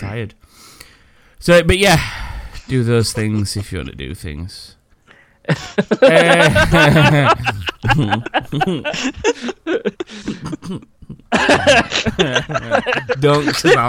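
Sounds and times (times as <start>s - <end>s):
speech: 0.0s - 0.8s, 1.4s - 4.8s, 5.5s - 13.8s
laughter: 5.5s - 13.8s
heavy hacking coughs: 10.0s - 11.7s.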